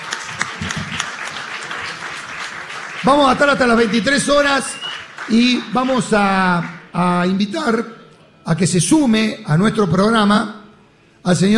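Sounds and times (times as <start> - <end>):
applause of many hands clapping: 0.0 - 7.1
speech: 3.0 - 10.6, 11.2 - 11.5.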